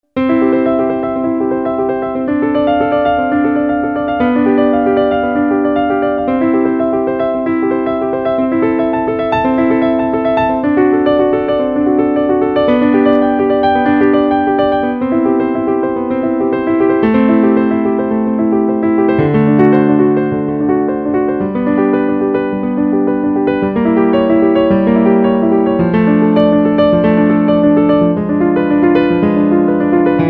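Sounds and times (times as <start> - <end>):
piano prelude: 0.0 - 30.2.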